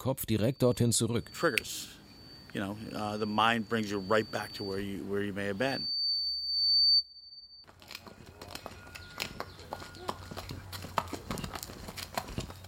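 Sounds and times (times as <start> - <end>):
speech: 0.0 - 6.0
high-pitched beep: 0.0 - 7.7
horse hooves clip-clopping: 7.6 - 12.6.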